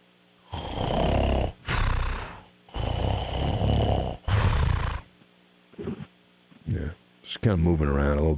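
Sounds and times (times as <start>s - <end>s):
man snoring over the phone: 0.5s - 5.1s
speech: 7.4s - 8.3s.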